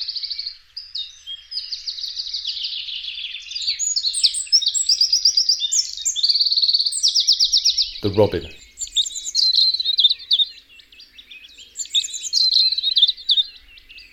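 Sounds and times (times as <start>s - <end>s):
wren singing loud rapid trills in dawn chorus: 0.0s - 14.1s
speech: 8.0s - 8.6s.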